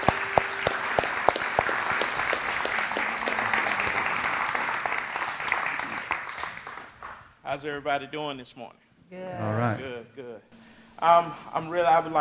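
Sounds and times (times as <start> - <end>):
audience applauding: 0.0 - 7.3
speech: 7.5 - 12.2.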